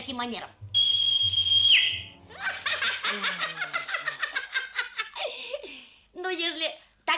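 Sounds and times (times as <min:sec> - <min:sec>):
speech: 0:00.1 - 0:00.6, 0:03.1 - 0:03.5, 0:06.2 - 0:07.1
loud shrill human whistle: 0:00.8 - 0:02.1
rapid rhythmic snickering laughter: 0:02.4 - 0:05.3.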